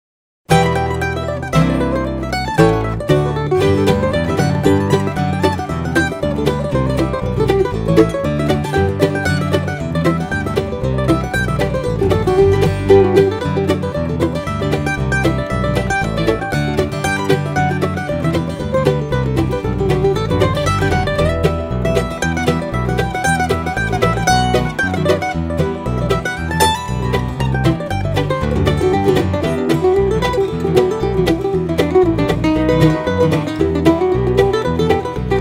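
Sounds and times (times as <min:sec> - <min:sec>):
mandolin intro jam: 0:00.5 - 0:35.3.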